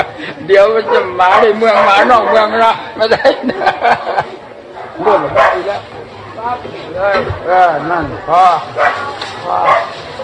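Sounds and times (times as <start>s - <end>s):
speech: 0.0s - 4.3s, 5.0s - 10.0s
temple dog barking: 0.8s - 2.6s, 4.8s - 5.8s, 8.8s - 10.0s
laughter: 2.6s - 4.6s.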